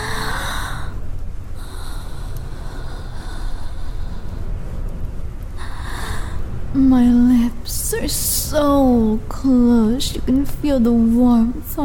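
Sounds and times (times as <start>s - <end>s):
slow airy breathing: 0.0s - 6.7s
steady low rumble: 0.0s - 11.8s
speech: 6.8s - 7.3s, 8.1s - 11.8s.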